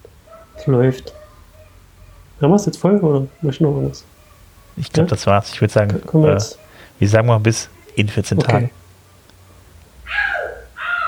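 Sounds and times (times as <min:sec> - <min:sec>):
child shouting: 0:00.3 - 0:02.4, 0:03.3 - 0:04.8, 0:09.5 - 0:11.0
speech: 0:00.6 - 0:01.2, 0:02.4 - 0:04.1, 0:04.8 - 0:08.8.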